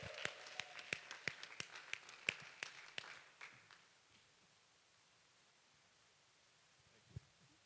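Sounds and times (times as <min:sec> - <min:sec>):
applause from a gathered crowd: 0:00.0 - 0:03.8.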